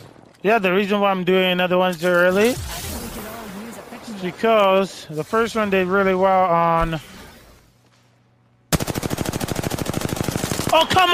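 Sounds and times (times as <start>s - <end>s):
speech: 0.4s - 2.7s, 4.2s - 7.1s, 10.8s - 11.1s
rapid automatic gunfire in a video game: 8.7s - 11.1s.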